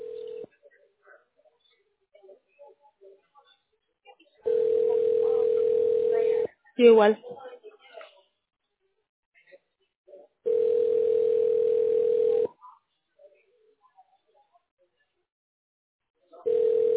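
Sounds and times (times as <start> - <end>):
telephone tone while a call is being placed: 4.5 - 6.4, 10.5 - 12.5, 16.5 - 16.9
speech: 6.8 - 7.4.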